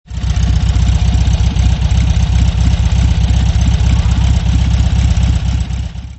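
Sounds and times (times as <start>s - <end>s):
Volkswagen Beetle engine idling: 0.1s - 6.1s.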